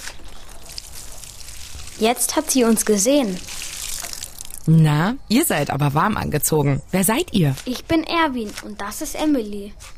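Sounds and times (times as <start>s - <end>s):
water poured onto soil around a small plant near Nakuru Kenya: 0.0s - 4.7s
speech: 2.0s - 3.6s, 4.7s - 9.9s.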